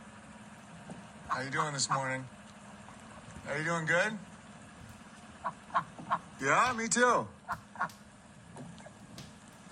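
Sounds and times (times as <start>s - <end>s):
duck quacking: 1.3s - 2.2s, 5.4s - 6.3s
speech: 1.3s - 2.4s, 3.4s - 4.3s, 5.4s - 8.0s.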